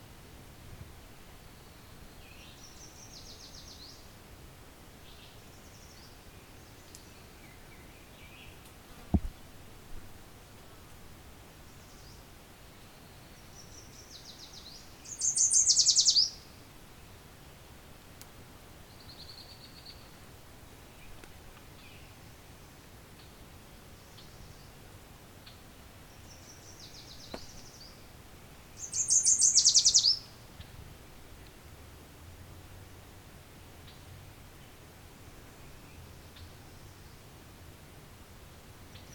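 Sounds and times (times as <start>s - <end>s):
steady hiss of outdoor noise: 0.0s - 39.1s
songbird singing while gleaning bugs from leaves: 1.3s - 4.2s, 5.0s - 9.5s, 11.6s - 17.2s, 18.8s - 20.2s, 20.8s - 31.6s, 33.6s - 37.4s, 38.9s - 39.1s.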